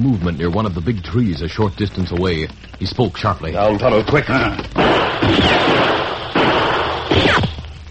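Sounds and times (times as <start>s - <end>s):
speech: 0.1s - 5.9s
gunshots in a western-style shootout among boulders and trees: 4.7s - 7.6s.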